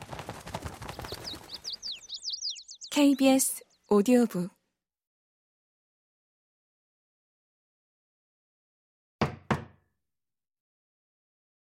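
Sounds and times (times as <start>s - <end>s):
speech: 3.0s - 4.6s
woman knocking on a wooden cabin door: 9.2s - 9.8s.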